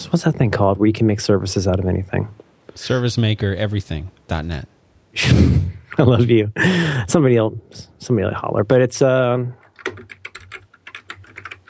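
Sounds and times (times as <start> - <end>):
speech: 0.0 - 9.6
typing on a computer keyboard: 9.6 - 11.6.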